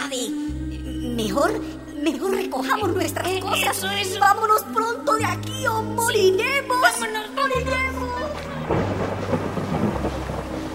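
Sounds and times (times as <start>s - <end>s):
speech: 1.2s - 9.0s
heavy rain pouring in a dense steady hiss: 8.1s - 10.7s
deep thunder rumbling low and continuous: 8.6s - 10.7s.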